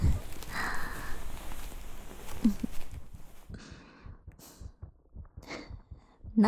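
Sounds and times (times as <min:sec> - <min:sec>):
soft rustling hiss: 0:00.0 - 0:03.5
fast heartbeat: 0:00.0 - 0:06.4.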